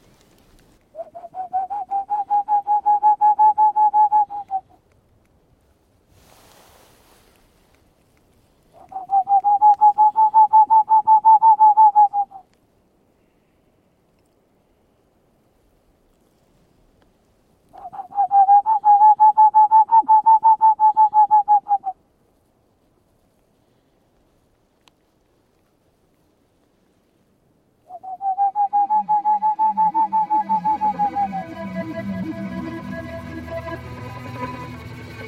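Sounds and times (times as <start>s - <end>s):
person whistling an imitation of a Tengmalm's owl call at night: 0.9s - 4.8s, 8.7s - 12.5s, 17.7s - 22.0s, 27.9s - 35.2s.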